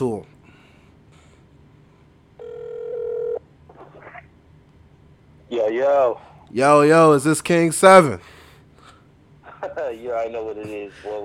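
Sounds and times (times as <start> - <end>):
speech: 0.0 - 0.4, 5.5 - 8.4, 9.7 - 11.2
telephone call ringing through with electronic ring tone: 2.4 - 3.4.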